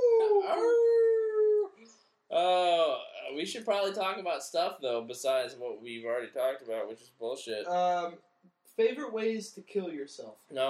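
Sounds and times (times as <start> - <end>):
wolf howling: 0.0 - 1.8
speech: 3.4 - 10.6.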